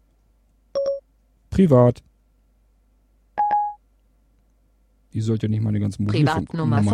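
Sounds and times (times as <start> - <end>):
speech: 1.6 - 2.1, 5.1 - 6.9
FaceTime call tone on an iPhone: 3.4 - 3.8.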